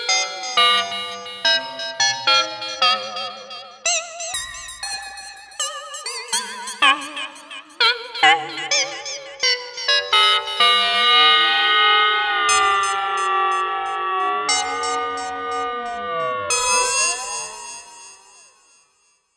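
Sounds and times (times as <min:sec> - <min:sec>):
Novation UltraNova synthesizer bell: 0:00.1 - 0:03.4, 0:08.5 - 0:18.8.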